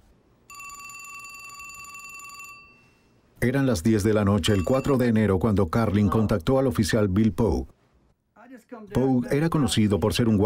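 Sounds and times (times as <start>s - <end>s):
telephone ringing: 0.5s - 3.1s, 4.4s - 5.3s
quiet hiss: 2.8s - 10.4s
speech: 3.4s - 7.8s, 8.7s - 10.4s.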